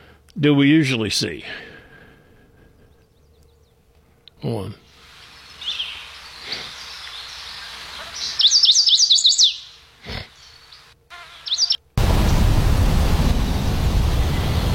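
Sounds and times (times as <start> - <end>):
speech: 0.4 - 1.7, 4.4 - 4.8
bright rapid bird chirps and trills: 2.7 - 3.9, 5.0 - 11.9
waterfall roaring: 12.0 - 14.7.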